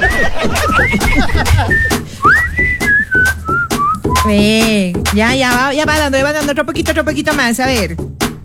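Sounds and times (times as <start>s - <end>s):
chuckling: 0.0s - 2.4s
elderly man whistling a tune: 0.0s - 4.3s
speech: 4.3s - 8.2s.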